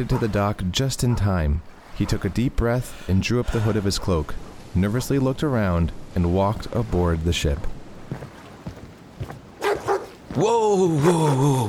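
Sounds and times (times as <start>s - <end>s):
speech: 0.0s - 8.2s, 10.4s - 11.6s
wolfhounds barking and snarling: 9.6s - 10.2s.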